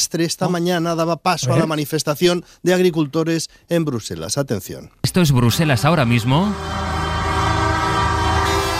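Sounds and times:
speech: 0.0s - 7.1s
loud brassy vehicle horn playing a short tune: 6.5s - 8.7s.

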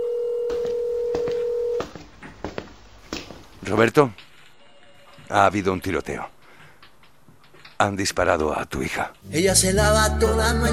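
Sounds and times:
telephone dial tone: 0.0s - 1.8s
speech: 3.7s - 4.3s, 5.3s - 6.4s, 7.8s - 10.7s.

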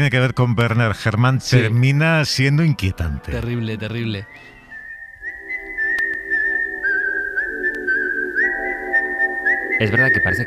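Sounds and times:
speech: 0.0s - 4.5s, 9.8s - 10.4s
soft sustained backing notes: 0.0s - 10.4s
whistled film tune: 3.2s - 10.4s.

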